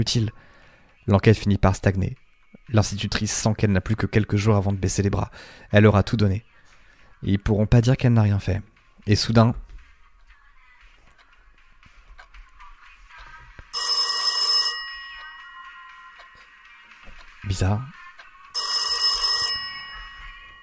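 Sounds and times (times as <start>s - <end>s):
speech: 0.0s - 6.5s, 7.2s - 9.6s, 17.5s - 18.0s
old-fashioned telephone bell ringing: 13.7s - 16.8s, 18.5s - 20.6s.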